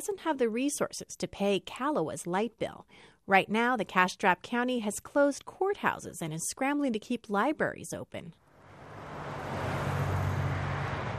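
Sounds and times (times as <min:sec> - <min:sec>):
speech: 0:00.0 - 0:08.4
fleet of PG&E utility service trucks rumbling past a neighborhood in Kahlua, Fresno County: 0:08.4 - 0:11.1.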